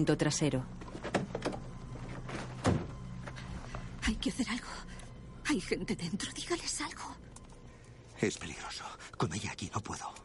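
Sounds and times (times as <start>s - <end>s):
speech: 0.0s - 0.8s, 4.2s - 4.9s, 5.5s - 7.2s, 8.2s - 10.2s
car boot closing with a dull thunk: 2.6s - 3.0s.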